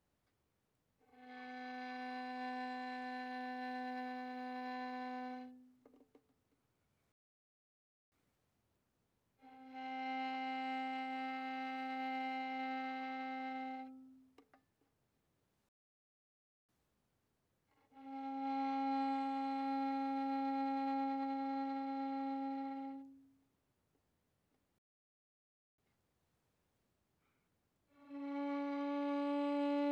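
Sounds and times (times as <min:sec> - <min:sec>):
violin bowed softly on the G string: 0:01.1 - 0:05.6, 0:09.4 - 0:14.2, 0:18.0 - 0:23.2, 0:28.0 - 0:29.9.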